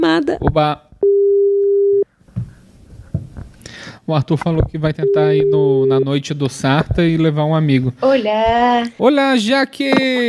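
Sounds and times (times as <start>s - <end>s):
speech: 0.0s - 0.9s, 4.1s - 10.2s
telephone dial tone while placing a call: 1.0s - 2.0s.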